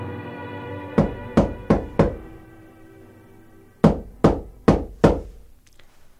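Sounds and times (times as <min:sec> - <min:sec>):
firm knocking on a door: 0:01.0 - 0:02.4, 0:03.9 - 0:05.5.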